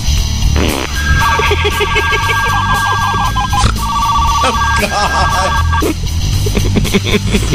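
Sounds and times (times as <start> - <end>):
busy noisy background: 0.0 - 7.4
comic fart sputtering bursts: 0.8 - 5.9
novelty joke fart phone ringing with electronic trill: 0.9 - 6.0
speech: 1.6 - 3.2, 4.4 - 6.2, 6.9 - 7.5.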